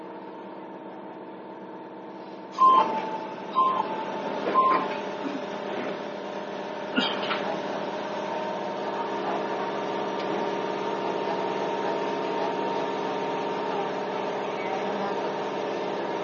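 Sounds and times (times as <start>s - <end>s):
Izukyu 8000 series stainless steel electric train running rumble: 2.5s - 16.2s.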